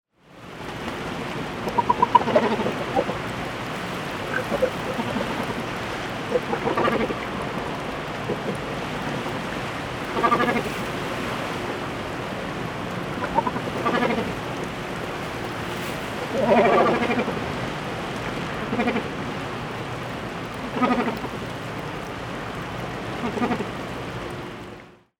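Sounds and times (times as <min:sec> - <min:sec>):
Phalacrocorax carbo water birds: 0:00.2 - 0:25.0.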